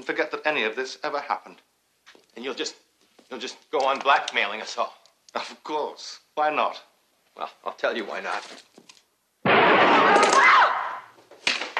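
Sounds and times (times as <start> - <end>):
speech: 0.0 - 1.7, 2.4 - 8.9
gunshot: 9.4 - 11.1.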